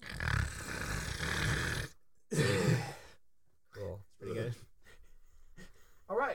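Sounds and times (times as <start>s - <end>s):
person imitating a loud rough battle snore: 0.0s - 3.1s.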